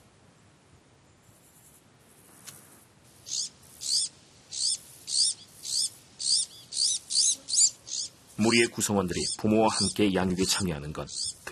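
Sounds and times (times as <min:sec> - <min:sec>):
Iberian magpie chirping in evergreen oak woodland of the southwestern Iberian Peninsula: 0:03.2 - 0:11.5
speech: 0:08.4 - 0:11.5.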